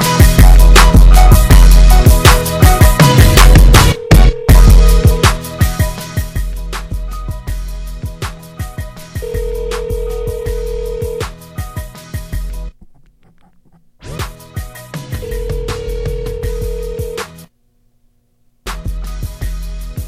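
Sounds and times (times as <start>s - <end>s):
loud rhythmic music bed with punchy drums: 0.0s - 17.5s, 18.7s - 20.0s
phone ringback tone: 2.9s - 5.4s, 9.2s - 11.3s, 15.1s - 17.3s.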